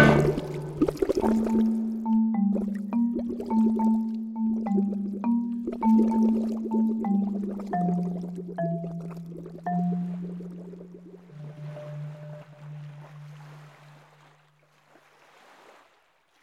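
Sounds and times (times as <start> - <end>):
low steady drone: 0.0 - 1.1
underwater rush of something plunging deep into the sea: 0.0 - 2.0, 4.8 - 14.4
bubbling pops and gurgles: 0.0 - 11.7.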